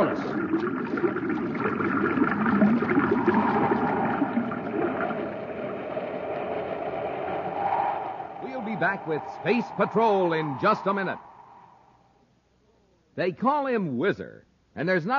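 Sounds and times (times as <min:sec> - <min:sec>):
reversed pumps forcing water through a pipe into a shaft: 0:00.0 - 0:11.8
low mechanical drone: 0:03.1 - 0:12.1
speech: 0:08.8 - 0:11.3, 0:13.2 - 0:15.1.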